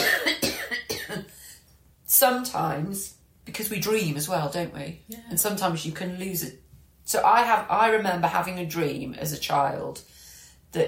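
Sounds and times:
harsh coughing: 0.0 - 1.4
person breathing: 1.3 - 1.7, 10.1 - 10.7
speech: 2.2 - 10.8.

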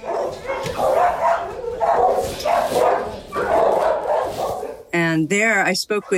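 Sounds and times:
dogs barking at an animal shelter in New York City: 0.0 - 5.0, 5.9 - 6.1
speech: 5.2 - 6.1.

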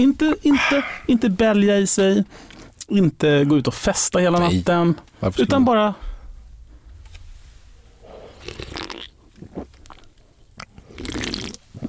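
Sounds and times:
speech: 0.0 - 6.1
someone drinking a beverage in gulping sips: 8.3 - 11.8.

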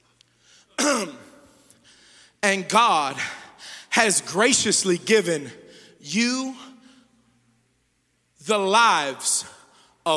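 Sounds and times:
man clearing his throat: 0.8 - 1.3
speech: 2.4 - 3.4, 4.0 - 6.7, 8.4 - 10.1.

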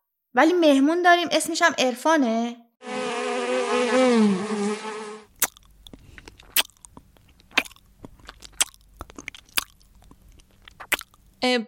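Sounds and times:
speech: 0.3 - 3.0, 4.2 - 4.6, 11.4 - 11.6
loud insect-like buzzing drone: 2.8 - 5.3
person chewing hard candy: 5.3 - 11.4.

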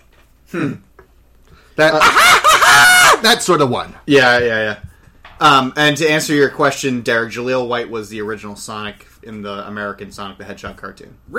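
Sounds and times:
speech: 0.5 - 0.9, 1.8 - 2.4, 3.2 - 11.3
voice imitating a robot chicken's cackling laugh: 1.9 - 3.2.

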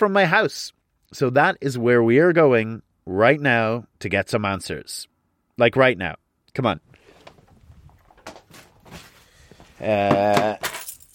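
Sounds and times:
speech: 0.0 - 6.9, 9.8 - 10.7
keys jangling in short metallic bursts: 10.6 - 11.1.

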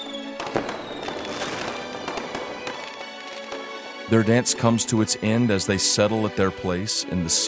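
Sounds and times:
fireworks bursting: 0.0 - 4.1
speech: 4.1 - 7.4.

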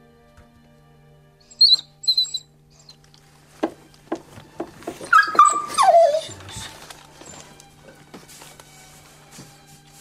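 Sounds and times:
newborn puppy squeaking: 1.4 - 3.0, 4.9 - 7.4
soft rustling and handling noises: 3.2 - 9.9.

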